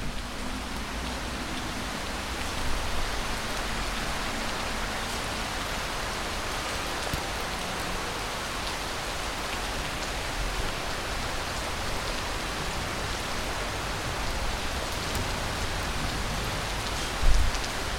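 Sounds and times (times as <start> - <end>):
steady rain from a grey sky pattering on surfaces, heard from a balcony: 0.0 - 17.9.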